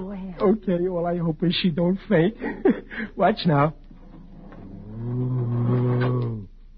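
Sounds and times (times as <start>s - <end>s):
speech: 0.4s - 3.8s
man growling imitating a bat's snarl: 4.7s - 6.5s.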